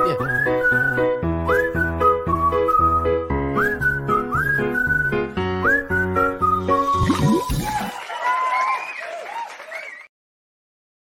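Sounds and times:
short musical jingle with whistled melody over bouncy backing: 0.0s - 10.1s
crowd applauding and cheering: 6.7s - 10.1s.

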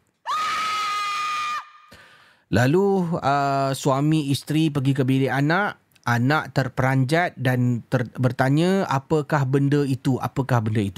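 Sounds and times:
child screaming loudly: 0.3s - 1.9s
speech: 2.5s - 10.9s.

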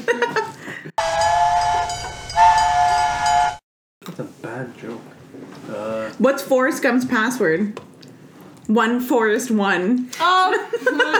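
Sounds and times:
laughter: 0.0s - 0.9s, 10.3s - 11.1s
steam train whistle: 1.0s - 3.6s
speech: 6.2s - 7.9s, 8.7s - 11.1s.

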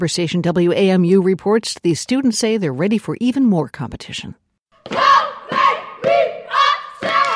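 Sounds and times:
speech: 0.0s - 4.4s
step team shouting in unison in a hallway: 4.8s - 7.3s
step team stomping: 4.8s - 7.3s
step team clapping: 6.9s - 7.3s.

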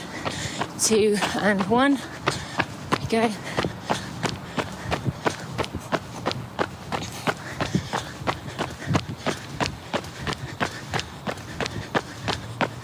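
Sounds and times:
running footsteps during a fast stride interval: 0.0s - 12.8s
speech: 0.8s - 2.4s, 3.1s - 3.6s.

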